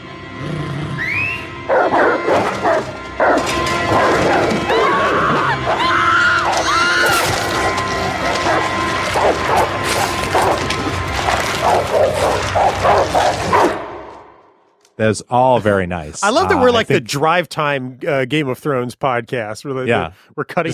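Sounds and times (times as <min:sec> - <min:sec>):
several dogs barking, snarling and yelping in an attack: 0:00.3 - 0:14.3
high wailing screams: 0:04.7 - 0:08.2
speech: 0:15.0 - 0:20.7.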